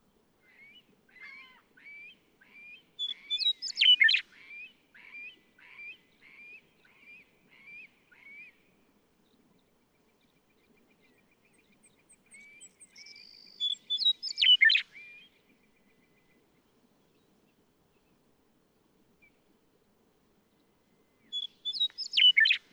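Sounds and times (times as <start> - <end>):
Western meadowlark song: 1.9 - 7.9, 9.3 - 18.2, 20.6 - 22.7.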